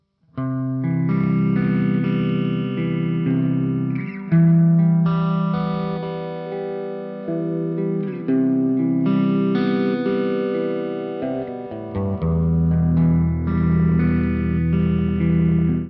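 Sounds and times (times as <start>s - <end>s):
electric guitar with P90 pickup: 0.3s - 15.8s.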